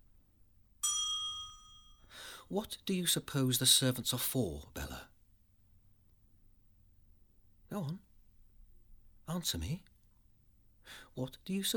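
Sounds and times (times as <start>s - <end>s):
bell ringing with a bright high ding: 0.8s - 2.1s
speech: 2.5s - 5.1s, 7.8s - 8.0s, 9.3s - 9.9s, 10.9s - 11.7s.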